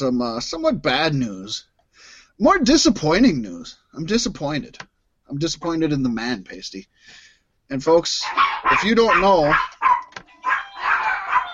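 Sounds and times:
speech: 0.0s - 1.7s, 2.4s - 9.9s
dogs barking: 8.2s - 11.5s.

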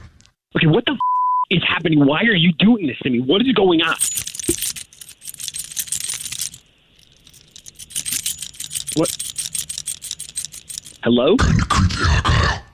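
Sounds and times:
speech: 0.6s - 4.3s, 9.0s - 9.2s, 11.0s - 12.6s
keys jingling: 3.8s - 11.0s.

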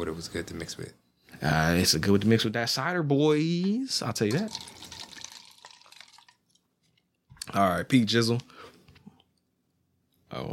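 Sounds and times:
speech: 0.0s - 4.8s, 7.5s - 8.6s, 10.3s - 10.5s
liquor poured for a shot from a steeply tilted bottle: 4.2s - 7.1s.

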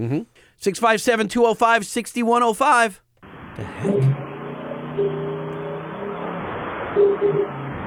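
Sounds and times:
speech: 0.0s - 3.0s
engine revving on a dyno run: 3.5s - 7.8s.

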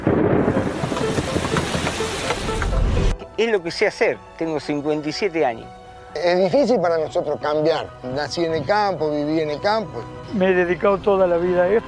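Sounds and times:
low thunder rumbling: 0.0s - 3.2s
steady dense rainfall: 0.0s - 3.2s
speech: 3.4s - 11.8s.

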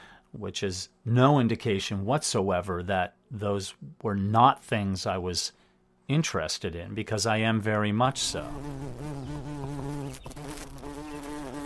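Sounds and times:
speech: 0.3s - 11.1s
bumblebees and honeybees buzzing outdoors: 8.1s - 11.6s.

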